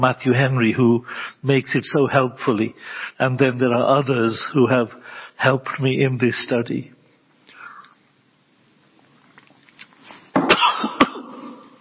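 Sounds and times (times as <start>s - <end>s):
speech: 0.0s - 7.0s
person with a tickle in the throat coughing: 10.4s - 11.6s.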